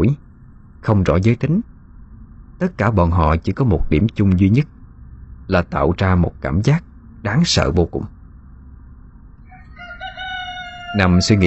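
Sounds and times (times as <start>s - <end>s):
low steady rumble: 0.0s - 11.4s
speech: 0.8s - 1.7s, 2.6s - 4.8s, 5.5s - 8.2s, 10.9s - 11.4s
rooster crowing at dawn: 9.4s - 11.4s.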